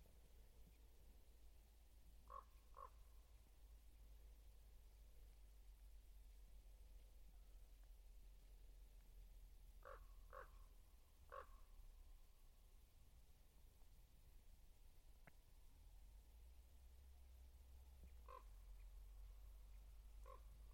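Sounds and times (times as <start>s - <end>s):
steady low rumble of outdoor noise: 0.0s - 20.7s
raven calling in harsh croaks: 2.2s - 3.1s, 9.8s - 10.7s, 11.3s - 11.7s, 18.2s - 18.6s, 20.2s - 20.7s.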